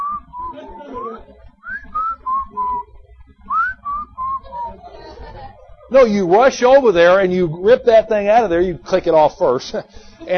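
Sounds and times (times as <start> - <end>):
person whistling a casual wandering tune: 0.0 - 2.9, 3.5 - 4.8
laughter: 3.5 - 7.7, 9.7 - 10.3
speech: 5.9 - 10.3.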